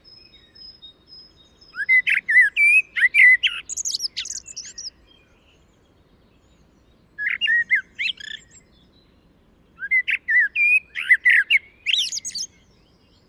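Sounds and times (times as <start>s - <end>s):
Common blackbird Turdus merula warbling song: 0.0s - 13.2s.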